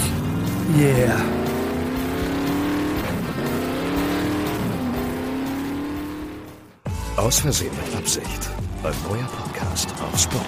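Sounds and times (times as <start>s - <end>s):
fast big car engine revving and accelerating: 0.0s - 6.8s
speech: 0.7s - 1.4s, 7.2s - 10.4s.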